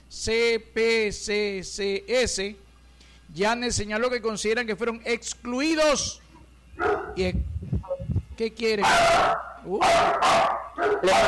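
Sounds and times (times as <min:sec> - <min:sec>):
speech: 0:00.1 - 0:02.6, 0:03.3 - 0:06.2, 0:06.8 - 0:07.7, 0:08.4 - 0:11.2
dog whining: 0:06.8 - 0:07.2, 0:09.2 - 0:11.1
dogs barking: 0:06.8 - 0:07.3, 0:08.8 - 0:11.2.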